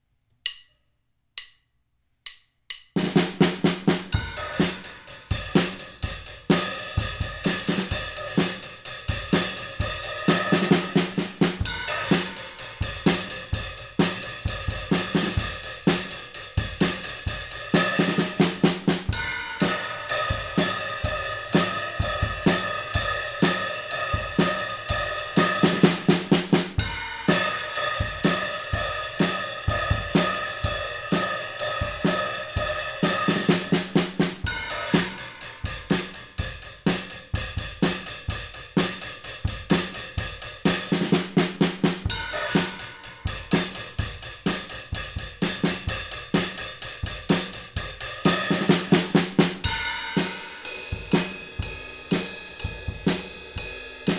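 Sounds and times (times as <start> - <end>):
two-piece mahogany drum kit with ride cymbal: 0.4 - 0.8, 1.4 - 54.1.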